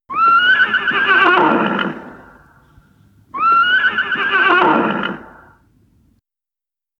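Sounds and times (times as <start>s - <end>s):
horse neighing: 0.1s - 2.7s, 3.3s - 5.6s.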